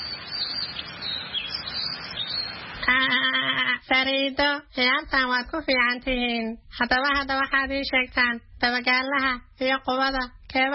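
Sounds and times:
birds chirping: 0.0 - 3.8
speech: 3.9 - 10.7.

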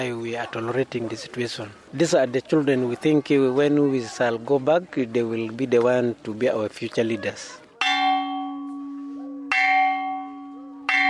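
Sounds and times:
speech: 0.0 - 7.6
school bell struck with bright metallic ring: 7.8 - 11.0.

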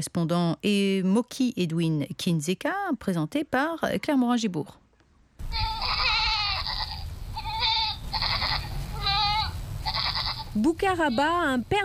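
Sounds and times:
speech: 0.0 - 4.8, 10.6 - 11.8
steady low outdoor rumble: 5.4 - 11.8
goats bleating: 5.5 - 11.5.

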